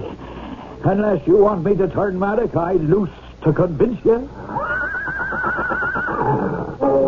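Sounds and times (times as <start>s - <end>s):
speech: 0.9s - 4.7s
huge horse neighing: 4.5s - 6.9s.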